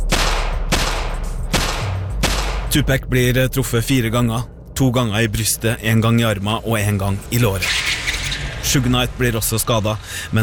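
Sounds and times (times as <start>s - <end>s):
gunshots fired from the window of a Cadillac: 0.0s - 2.8s
low rumble: 0.0s - 10.4s
speech: 2.8s - 7.8s, 8.6s - 10.4s.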